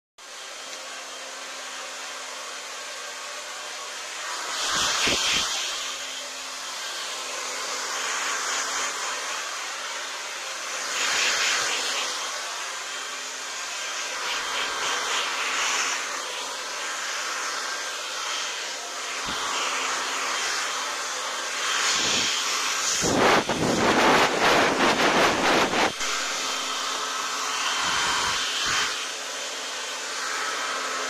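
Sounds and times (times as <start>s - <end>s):
hair dryer: 0.2s - 31.0s.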